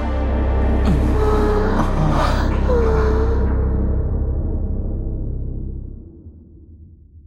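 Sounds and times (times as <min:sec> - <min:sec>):
dense steady low drone: 0:00.0 - 0:07.2
breathy moans and gasps of orgasm: 0:00.6 - 0:03.9.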